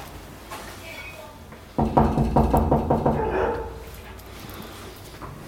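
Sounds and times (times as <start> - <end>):
knocking on a door: 1.8 - 3.7.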